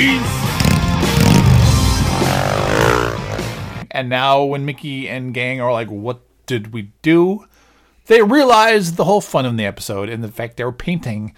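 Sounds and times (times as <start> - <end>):
speech: 0.0 - 0.4, 4.0 - 7.5, 8.1 - 11.3
motorcycle engine revving and pulling away: 0.4 - 3.8.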